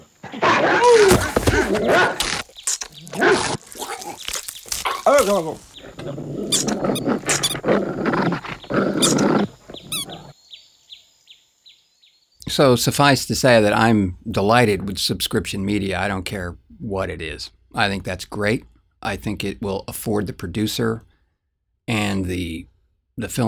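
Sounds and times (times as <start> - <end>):
dog snarling, growling and barking ferociously in an attack: 0.2 - 2.4, 3.0 - 4.2, 4.8 - 10.3
speech: 0.3 - 2.2, 5.0 - 8.1, 9.0 - 9.6, 12.5 - 21.1, 21.9 - 23.4
scuffling: 0.8 - 5.8.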